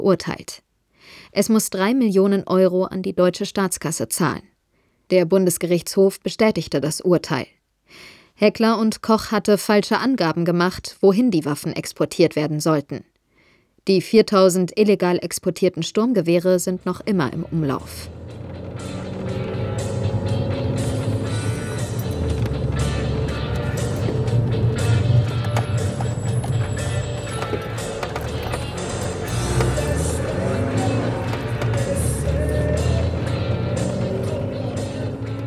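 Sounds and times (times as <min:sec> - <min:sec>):
speech: 0:00.0 - 0:04.5, 0:05.1 - 0:13.1, 0:13.8 - 0:19.5
rickety old car engine rumbling: 0:16.6 - 0:35.4
road noise: 0:16.6 - 0:35.4
rickety old car rattles: 0:17.7 - 0:35.4.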